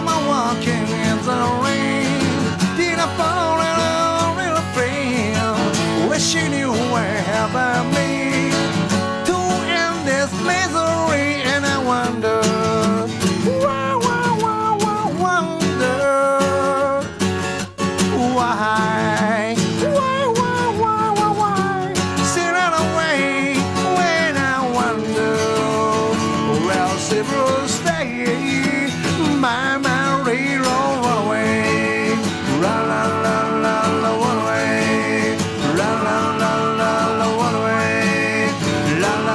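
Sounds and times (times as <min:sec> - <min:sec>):
upbeat 1960s pop-rock song with vocal guitar bass and drums: 0:00.0 - 0:39.3.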